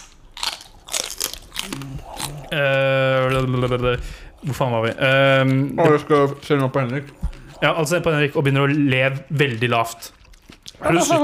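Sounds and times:
crisp crunchy bites into chili peppers: 0.0s - 2.5s
speech: 1.6s - 10.2s, 10.8s - 11.2s.

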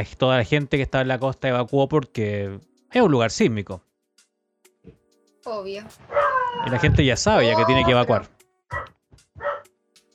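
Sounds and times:
speech: 0.0s - 3.9s, 4.8s - 9.5s
dog yipping: 6.0s - 6.9s, 8.7s - 9.7s
dog barking: 6.1s - 6.8s, 8.7s - 9.7s.

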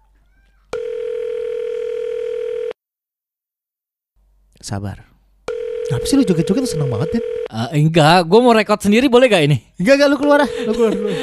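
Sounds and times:
telephone dialing and ringing tone: 0.7s - 2.8s, 5.5s - 7.5s
speech: 4.6s - 5.1s, 6.0s - 11.2s
laughter: 10.4s - 11.2s.

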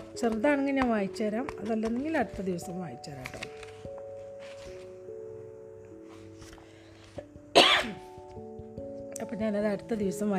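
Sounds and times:
speech: 0.2s - 3.6s, 9.4s - 10.3s
harsh cough from a person with a sore irritated throat: 7.5s - 8.0s.

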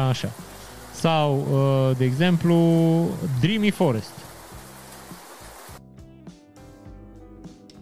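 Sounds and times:
speech: 0.0s - 4.3s
steady dense rain hiss from a sound machine: 0.0s - 5.8s.

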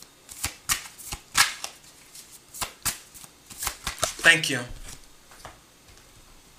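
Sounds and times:
tarot cards being shuffled for a reading: 0.3s - 5.0s
speech: 4.2s - 4.8s.

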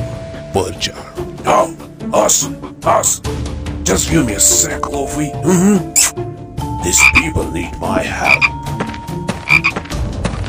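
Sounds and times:
speech: 0.5s - 8.6s
frog croaking in short raspy calls: 6.9s - 7.4s, 8.0s - 8.6s, 9.4s - 9.8s.

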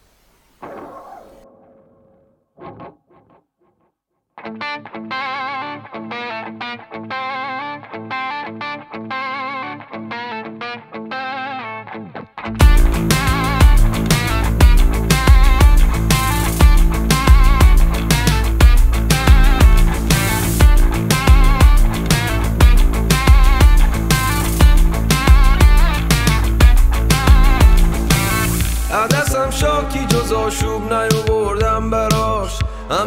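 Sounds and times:
heavily distorted music track with strong bass and drums: 12.6s - 33.0s.

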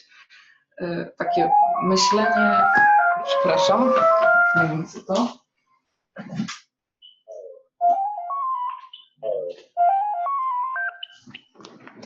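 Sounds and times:
speech: 0.8s - 5.4s, 6.2s - 6.6s
phone ringing with a melodic electronic ringtone: 1.3s - 4.8s, 7.8s - 11.2s.

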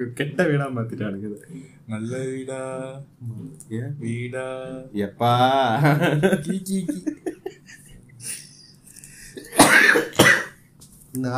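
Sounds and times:
speech: 0.0s - 7.3s, 11.2s - 11.3s
laughter: 5.3s - 9.4s
person coughing: 9.3s - 10.6s
person clearing throat: 9.4s - 10.6s.

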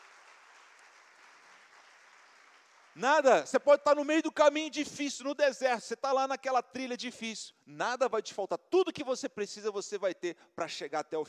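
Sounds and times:
large congregation applauding: 0.0s - 3.6s
speech: 3.0s - 11.2s.

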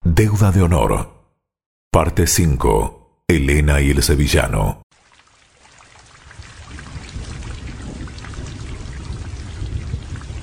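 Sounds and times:
speech: 0.2s - 1.2s, 2.0s - 4.8s
heavy cold rain pouring: 5.8s - 10.4s.

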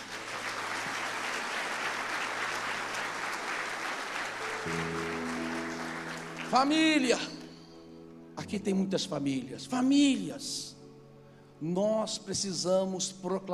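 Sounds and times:
church audience applauding: 0.0s - 7.6s
low organ or keyboard chord: 0.1s - 12.4s
speech: 4.6s - 5.1s, 6.5s - 7.4s, 8.5s - 10.8s, 11.6s - 13.5s.

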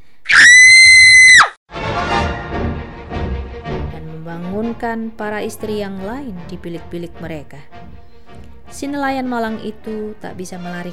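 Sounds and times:
woman screaming in shock on witnessing a stabbing: 0.3s - 1.6s
speech: 4.7s - 7.8s, 8.7s - 10.9s.

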